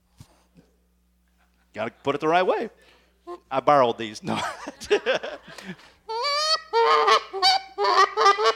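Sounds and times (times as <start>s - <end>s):
speech: 1.8s - 5.9s, 6.8s - 8.5s
laughter: 4.2s - 6.0s
goose call blown for calling in geese, honking: 6.1s - 8.5s.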